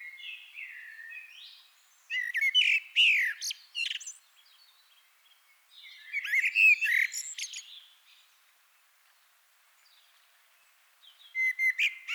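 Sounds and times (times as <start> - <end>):
Eurasian blackbird Turdus merula singing: 0.0 - 4.2, 5.8 - 7.8, 11.2 - 12.1.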